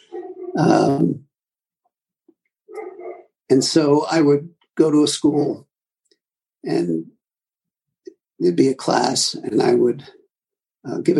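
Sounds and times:
dog giving a loud rough drawn-out bark: 0.0 - 0.9, 2.7 - 3.4, 5.2 - 5.6
speech: 0.6 - 1.3, 3.5 - 5.7, 6.6 - 7.2, 8.4 - 10.2, 10.8 - 11.1.

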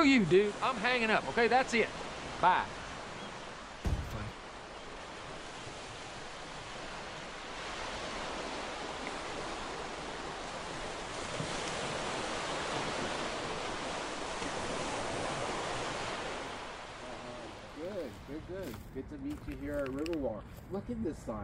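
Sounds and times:
speech: 0.0 - 2.8, 18.5 - 21.4
Housatonic River flowing outdoors at a riverwalk: 0.0 - 18.0
knock: 3.9 - 4.3.

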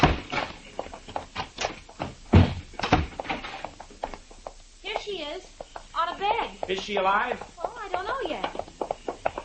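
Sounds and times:
knocks and bumps: 0.0 - 9.4
door thudding shut: 2.0 - 3.6
speech: 6.6 - 7.5.

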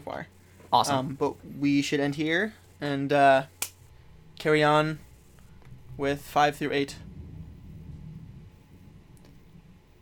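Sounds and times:
speech: 0.1 - 3.6, 4.4 - 5.1, 6.0 - 7.1
thunder rumbling during a storm: 6.8 - 9.9.

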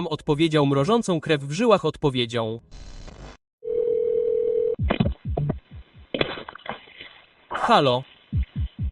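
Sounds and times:
speech: 0.0 - 3.3, 7.6 - 8.4
telephone ringing tone: 3.6 - 4.8.

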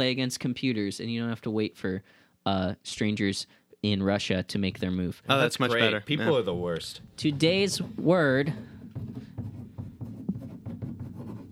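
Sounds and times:
speech: 0.0 - 9.1
pen scratching across paper writing a word by hand: 6.2 - 11.5.

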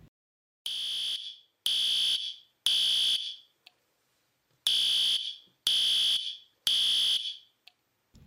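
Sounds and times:
fire alarm blaring piercing electronic beeps: 0.7 - 3.5, 4.7 - 7.5.

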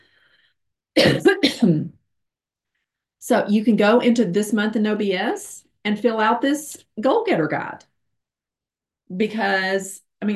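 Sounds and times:
rough, raspy coughing and throat clearing: 1.0 - 2.0
speech: 1.0 - 2.0, 3.2 - 7.9, 9.1 - 10.3.

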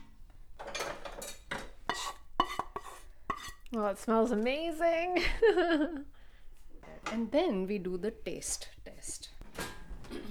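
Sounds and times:
utensil clinking and knocking against a pan of tempering: 0.6 - 3.6
scraping and stirring dal in a pan of tempering: 0.6 - 4.5
speech: 3.7 - 6.2, 7.1 - 9.2
laughter: 5.2 - 6.1.

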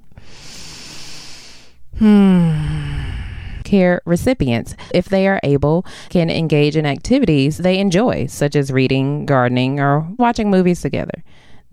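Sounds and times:
deep breath let out as a long voiced sigh: 0.2 - 3.6
speech: 2.0 - 2.6, 3.7 - 11.7.

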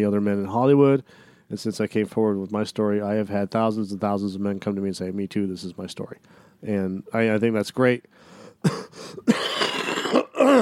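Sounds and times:
speech: 0.0 - 9.4, 10.4 - 10.6
raspy coughing: 8.6 - 10.6
voiced throat clearing: 8.6 - 10.6.

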